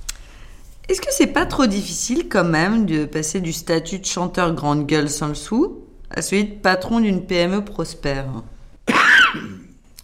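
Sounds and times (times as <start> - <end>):
speech: 0.9 - 8.6
person coughing: 8.8 - 9.8.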